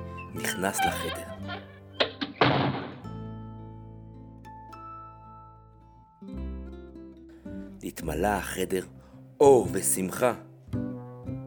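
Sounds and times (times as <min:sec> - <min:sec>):
door opening: 0:00.3 - 0:03.1
speech: 0:00.4 - 0:01.8, 0:07.9 - 0:10.5
wooden thunks: 0:02.0 - 0:03.1.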